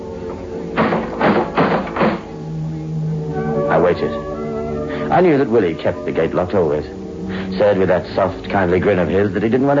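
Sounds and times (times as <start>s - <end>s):
faint low hum: 0.0s - 9.7s
firm knocks on a wooden front door: 0.8s - 2.3s
speech: 3.8s - 4.3s, 5.1s - 7.0s, 7.6s - 9.7s.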